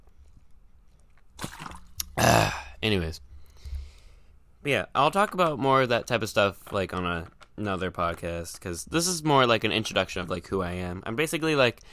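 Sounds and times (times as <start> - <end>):
person sipping water: 1.4 - 2.7
speech: 2.8 - 3.3, 4.6 - 11.9.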